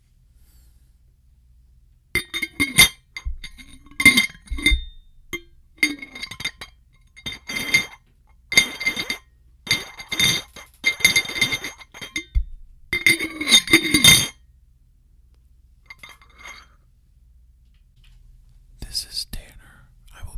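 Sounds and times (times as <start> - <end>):
glass jar being opened and closed: 2.2 - 14.4, 15.9 - 16.7.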